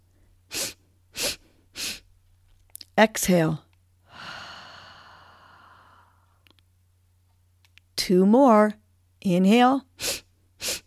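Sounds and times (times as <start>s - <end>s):
faint steady hum: 0.0s - 10.8s
sniffing through the nose: 0.5s - 2.1s, 10.0s - 10.8s
speech: 3.0s - 3.6s, 8.1s - 9.9s.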